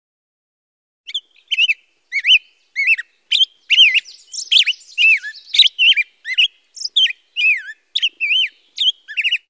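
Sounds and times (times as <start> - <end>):
pine grosbeak calls of clear warbling whistled notes: 1.1 - 9.4.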